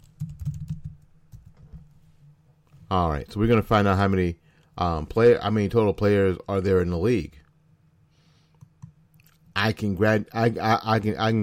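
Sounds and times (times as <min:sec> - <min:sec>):
computer keyboard typing: 0:00.0 - 0:01.6
speech: 0:02.9 - 0:07.4, 0:09.6 - 0:11.4.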